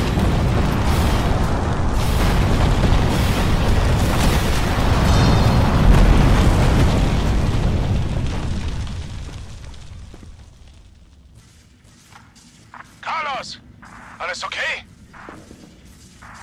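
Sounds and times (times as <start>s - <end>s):
detonated explosives roaring rumble: 0.0s - 11.2s.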